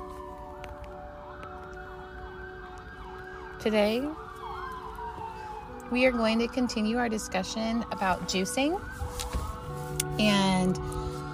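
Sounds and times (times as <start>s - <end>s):
ambulance siren passing by outside: 0.0s - 11.3s
steady low traffic rumble: 0.0s - 11.3s
speech: 3.6s - 4.2s, 5.9s - 9.3s, 10.2s - 11.0s.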